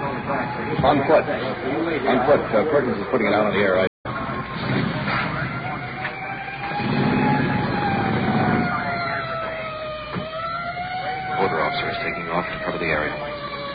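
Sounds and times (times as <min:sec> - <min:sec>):
district uniform police car siren wailing: 0:00.0 - 0:03.0, 0:04.1 - 0:13.7
rumbling traffic and engine noise: 0:00.0 - 0:13.7
speech: 0:00.8 - 0:03.9.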